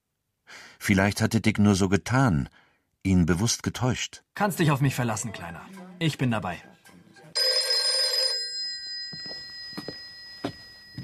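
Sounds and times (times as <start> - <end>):
speech: 0.8 - 6.8
telephone bell ringing at night: 7.4 - 11.0.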